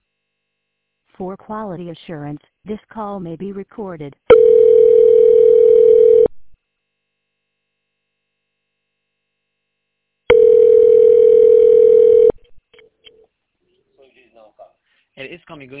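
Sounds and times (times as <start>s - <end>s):
speech: 1.2s - 4.5s, 15.3s - 15.7s
buzzy telephone ringback tone over the line: 4.3s - 6.4s, 10.3s - 12.4s.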